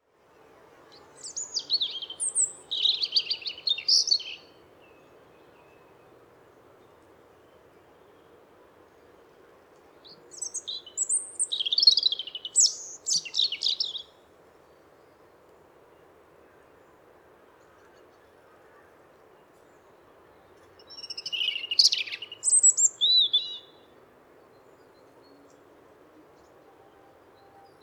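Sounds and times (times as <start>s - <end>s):
European robin voice: 0.9s - 5.0s, 10.0s - 14.2s, 20.8s - 23.9s.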